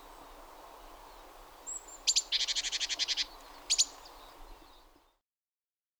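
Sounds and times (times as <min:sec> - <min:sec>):
great tit Parus major calling: 0:00.0 - 0:04.8.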